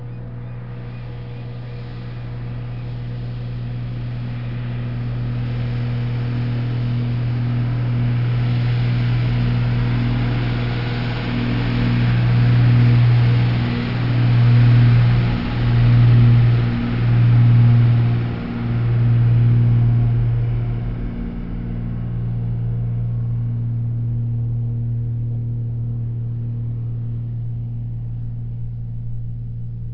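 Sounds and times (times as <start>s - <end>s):
truck: 0.0s - 29.9s.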